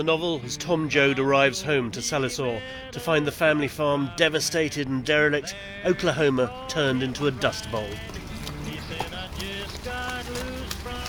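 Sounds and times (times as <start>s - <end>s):
speech: 0.0s - 8.3s
faint indistinct voices or tonal sounds: 5.8s - 11.0s
steady rain: 6.9s - 11.0s.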